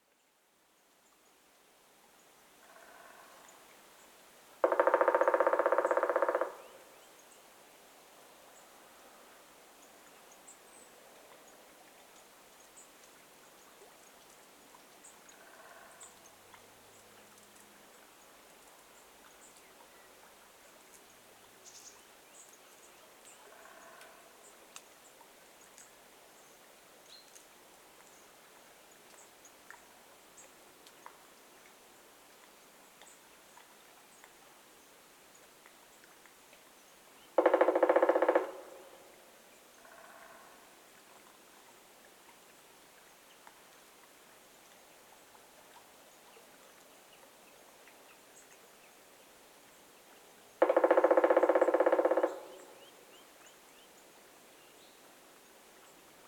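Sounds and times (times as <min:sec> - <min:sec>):
black woodpecker call: 0:04.6 - 0:06.9, 0:37.4 - 0:39.2, 0:50.6 - 0:53.1.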